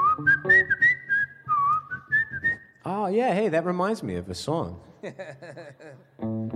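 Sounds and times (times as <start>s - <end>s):
person whistling a lively guitar-like melody: 0.0s - 2.8s
speech: 0.2s - 0.8s, 2.9s - 6.4s
laughter: 5.0s - 6.2s.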